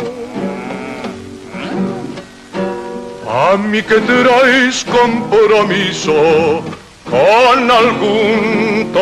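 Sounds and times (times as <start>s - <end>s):
cow mooing: 0.2s - 2.2s
speech: 3.6s - 9.0s.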